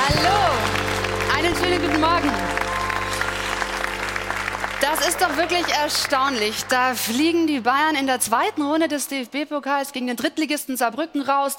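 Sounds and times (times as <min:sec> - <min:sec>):
studio audience applause: 0:00.0 - 0:07.4
speech: 0:01.5 - 0:02.6, 0:04.9 - 0:11.5.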